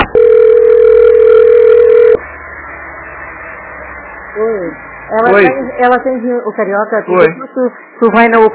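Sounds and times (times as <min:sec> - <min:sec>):
electronic telephone ringing tone: 0:00.1 - 0:02.2
speech: 0:05.9 - 0:08.5.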